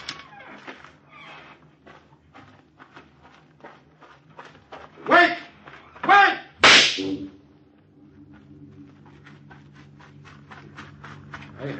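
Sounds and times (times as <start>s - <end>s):
gunshot fired to get someone's attention: 6.6s - 7.2s.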